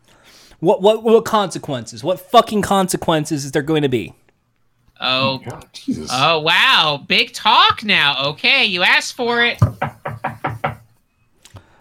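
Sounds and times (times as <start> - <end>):
speech: 0.6 - 4.2, 5.0 - 9.8
knocking on a door: 9.6 - 10.9.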